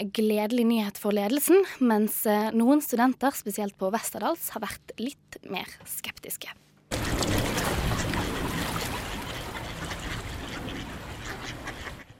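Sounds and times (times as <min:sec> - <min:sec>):
speech: 0:00.0 - 0:08.3
ducks quacking by a river: 0:06.9 - 0:12.1
flowing river water: 0:06.9 - 0:12.1.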